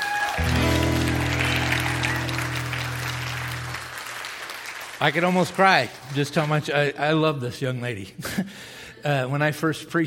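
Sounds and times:
crowd clapping: 0.0s - 7.2s
speech: 5.0s - 10.0s.

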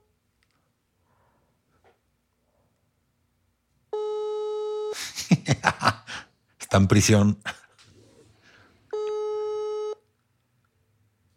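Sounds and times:
WhatsApp calling tone after dialing: 3.9s - 4.9s, 8.9s - 10.0s
laughter: 5.0s - 6.3s
speech: 6.7s - 7.6s.

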